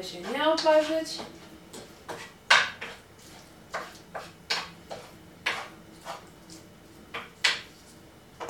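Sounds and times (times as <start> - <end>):
speech: 0.0 - 1.4
wooden spoon stirring food in a frying pan: 0.0 - 8.4.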